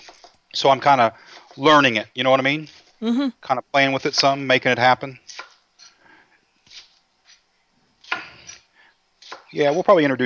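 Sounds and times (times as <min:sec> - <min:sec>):
speech: 0:00.6 - 0:05.2, 0:09.5 - 0:10.2
light sharp ceramic knife chopping green onions: 0:09.2 - 0:09.8.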